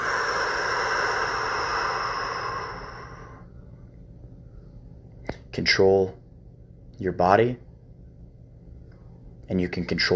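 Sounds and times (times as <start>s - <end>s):
deep breath in and full exhale: 0.0s - 3.5s
speech: 5.6s - 6.2s, 7.0s - 7.7s, 9.5s - 10.1s.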